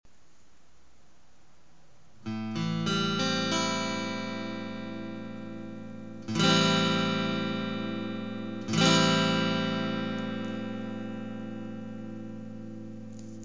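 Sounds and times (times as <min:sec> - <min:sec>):
guitar in A minor seventh: 0:01.9 - 0:13.4.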